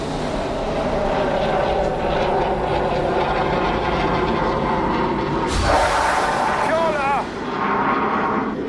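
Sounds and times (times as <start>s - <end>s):
J-16 fighter jet roaring over the sea: 0.0s - 8.6s
rocket strike blast hitting the target area and throwing up a water column: 5.5s - 7.4s.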